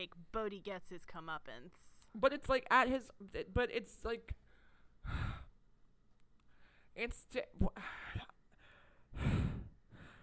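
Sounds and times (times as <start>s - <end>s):
speech: 0.0s - 4.4s, 5.0s - 5.4s, 7.0s - 8.3s
person making exaggerated heavy panting breaths as vocal imitation: 5.0s - 5.5s, 7.8s - 10.2s.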